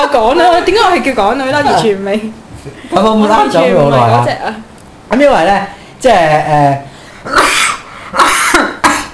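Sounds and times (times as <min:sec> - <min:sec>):
speech: 0:00.2 - 0:07.6
person coughing: 0:07.3 - 0:09.1.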